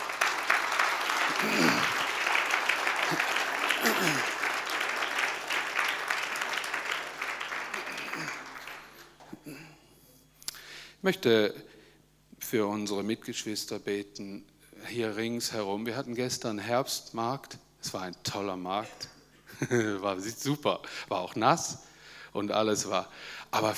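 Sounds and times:
audience applause: 0.0s - 9.3s
laughter: 0.8s - 5.6s, 6.4s - 9.2s
speech: 11.1s - 11.7s, 12.4s - 23.7s.

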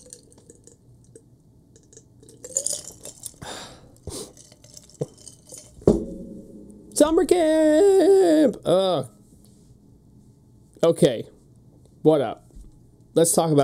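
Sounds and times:
coffee sipping: 0.0s - 1.2s, 1.8s - 5.8s
speech: 7.0s - 9.1s, 10.8s - 11.3s, 12.0s - 12.4s, 13.2s - 13.6s.

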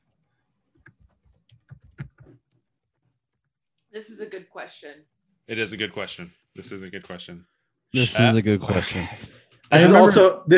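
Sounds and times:
typing an answer on a computer keyboard: 0.8s - 3.5s
speech: 3.9s - 10.5s.

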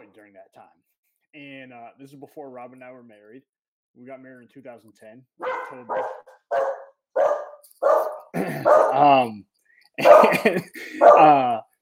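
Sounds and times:
speech: 0.1s - 6.8s, 8.4s - 11.6s
dog yelping and whining: 5.4s - 9.1s, 10.0s - 10.4s, 11.0s - 11.3s
laughter: 8.3s - 9.3s, 10.0s - 11.6s.

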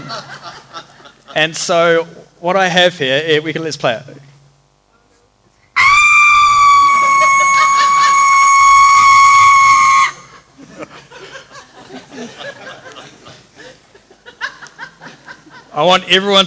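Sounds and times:
small group laughing: 0.0s - 1.4s, 6.6s - 15.8s
speech: 1.3s - 4.2s, 15.8s - 16.4s
person imitating a screaming goat at an Easter camp: 5.8s - 10.3s.

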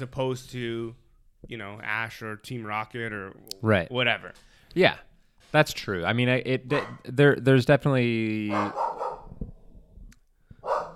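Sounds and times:
speech: 0.0s - 8.9s
dog barking: 6.7s - 7.1s, 8.5s - 9.3s, 10.6s - 10.9s.

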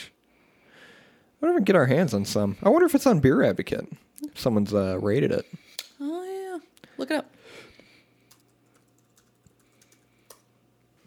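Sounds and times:
quiet hum: 0.0s - 11.0s
speech: 1.4s - 6.2s, 7.0s - 7.3s
typing on a computer keyboard: 8.3s - 10.4s.

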